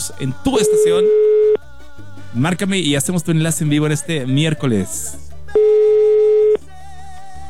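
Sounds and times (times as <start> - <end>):
speech: 0.1 - 1.5, 2.3 - 5.3
telephone ringback tone: 0.6 - 1.6, 5.6 - 6.6.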